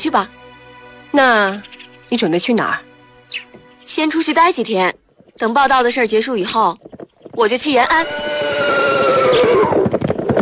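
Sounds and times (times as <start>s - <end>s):
speech: 0.0s - 0.4s, 1.1s - 8.4s
war horse hoofbeats clattering: 5.1s - 10.4s
war horse whinnying: 7.8s - 10.4s.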